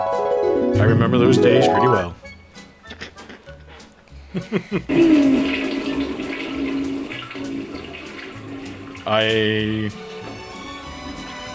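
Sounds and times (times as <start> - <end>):
speech: 0.8 - 2.2, 4.4 - 5.6, 9.1 - 10.0
laughter: 4.3 - 5.2
toilet flushing: 4.9 - 11.5.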